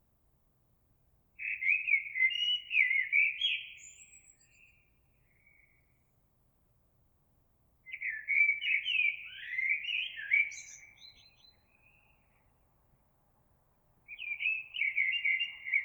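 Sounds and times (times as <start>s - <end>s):
Eurasian blackbird singing: 1.4s - 5.8s, 7.9s - 12.4s, 14.1s - 15.8s.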